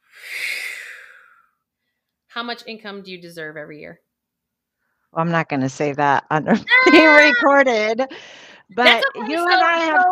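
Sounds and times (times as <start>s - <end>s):
deep breath blown out slowly: 0.0s - 1.6s, 8.1s - 8.7s
speech: 2.4s - 4.1s, 5.1s - 10.1s
laughter: 6.6s - 8.1s, 8.8s - 10.1s.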